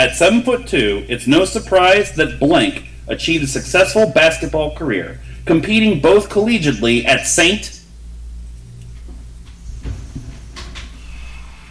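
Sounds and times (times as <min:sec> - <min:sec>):
speech: 0:00.0 - 0:07.8
chair scraping as a person backs away: 0:08.9 - 0:11.6
short creaking scrapes of a chair pushed back: 0:09.5 - 0:11.6.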